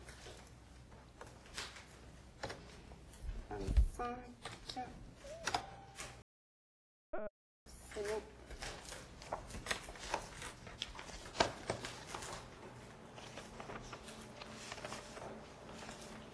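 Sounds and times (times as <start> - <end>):
paper being handled: 0.0 - 3.2, 7.9 - 16.3
speech: 3.6 - 5.1
printer printing a document: 11.1 - 16.3.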